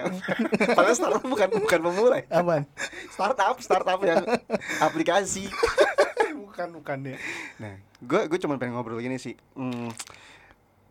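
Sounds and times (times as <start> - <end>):
speech: 0.0 - 6.0, 6.6 - 10.4
laughter: 0.0 - 6.4
plastic pack of wet wipes rustling: 9.7 - 10.2.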